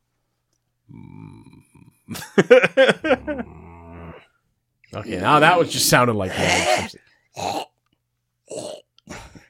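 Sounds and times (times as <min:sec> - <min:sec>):
person imitating a growl: 0:00.9 - 0:02.1, 0:03.0 - 0:04.4, 0:05.0 - 0:07.7, 0:08.5 - 0:09.2
speech: 0:01.8 - 0:03.4, 0:05.0 - 0:07.6.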